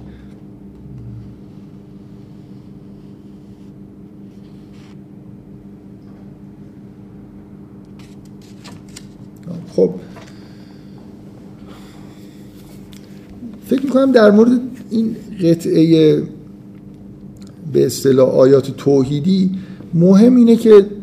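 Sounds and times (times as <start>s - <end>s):
steady low mechanical hum: 0.0s - 21.0s
paper pages turning: 4.3s - 5.0s, 8.0s - 9.3s
speech: 9.8s - 10.1s, 13.8s - 16.4s, 17.7s - 21.0s.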